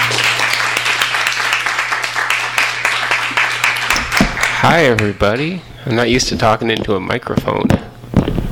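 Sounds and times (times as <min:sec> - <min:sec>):
crowd applauding: 0:00.0 - 0:05.6
speech: 0:04.6 - 0:07.9.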